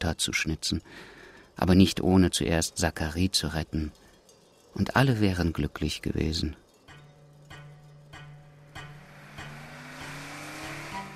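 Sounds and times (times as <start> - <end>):
speech: 0.1 - 4.0, 4.7 - 6.6
luxury car engine hum rising in pitch as it drives off: 8.0 - 11.1.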